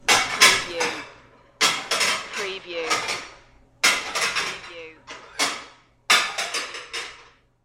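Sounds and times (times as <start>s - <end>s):
plates stacking: 0.0s - 7.5s.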